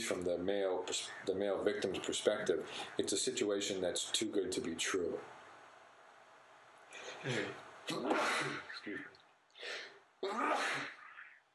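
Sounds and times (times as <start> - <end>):
speech: 0.1 - 5.4, 7.2 - 11.0
person sneezing: 7.2 - 9.0, 9.6 - 11.0
gasping intake of breath: 9.6 - 10.0.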